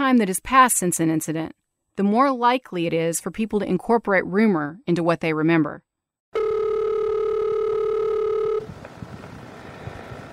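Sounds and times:
speech: 0.1 - 6.5
telephone line tone before a recorded phone call: 6.4 - 8.7.

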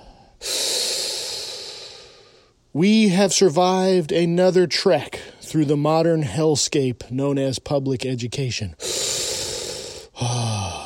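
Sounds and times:
deep breath: 0.0 - 2.6, 8.8 - 10.8
speech: 2.8 - 8.9.

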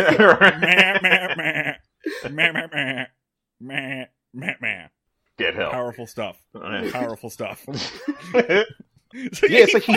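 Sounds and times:
laughter: 0.0 - 3.1, 6.8 - 9.9
speech: 0.0 - 4.0, 6.0 - 9.9
person imitating a goat bleating: 2.3 - 5.0.

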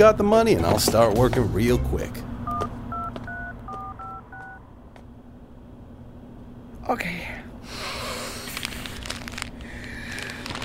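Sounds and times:
speech: 0.0 - 2.3, 6.9 - 7.2
low hum: 0.0 - 10.6
two-tone beeps from a telephone keypad being dialed: 2.5 - 4.6.

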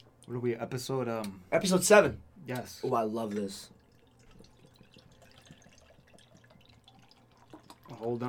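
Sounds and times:
speech: 0.3 - 3.8, 8.0 - 8.2
Thomas Hooker beer pouring into a glass: 3.2 - 8.2.

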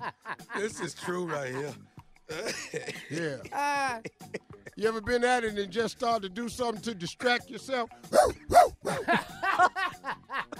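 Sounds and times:
laughter: 0.0 - 4.8, 8.5 - 10.5
speech: 0.6 - 9.8
person imitating a barking dog: 8.1 - 9.0.

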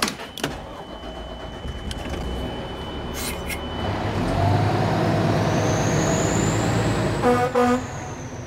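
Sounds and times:
fire truck engine rumbling while driving: 0.0 - 8.4
siren: 0.0 - 8.4
truck horn blasts: 7.2 - 8.2.

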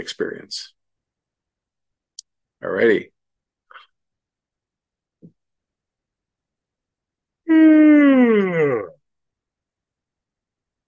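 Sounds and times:
speech: 0.0 - 0.8, 2.6 - 3.2, 7.5 - 9.0
long voiced yawn with groaning tone: 7.5 - 9.0.

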